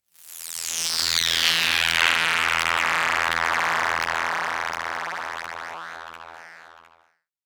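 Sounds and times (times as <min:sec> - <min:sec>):
band-pass filtered FM synth tone: 0:01.5 - 0:07.1.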